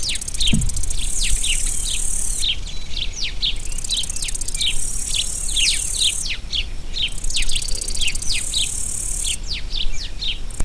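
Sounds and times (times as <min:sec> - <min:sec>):
house sparrows: 0:00.0 - 0:10.4.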